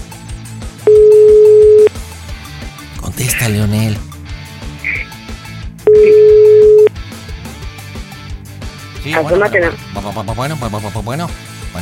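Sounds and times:
low rhythmic background: 0.9s - 1.9s, 2.8s - 5.2s, 5.9s - 6.9s, 9.0s - 9.9s
telephone dial tone while placing a call: 0.9s - 1.9s, 5.9s - 6.9s
speech: 3.4s - 4.1s, 9.1s - 11.8s.

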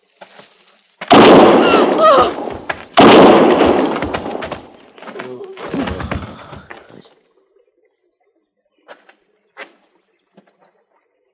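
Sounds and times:
loud sharp gunshots at a frontier army fort: 1.0s - 4.9s.

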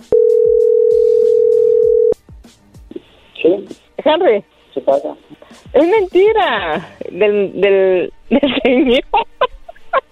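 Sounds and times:
telephone dial tone on a line being dialed again: 0.1s - 2.2s
speech: 4.1s - 9.2s
laughter: 8.3s - 10.1s.

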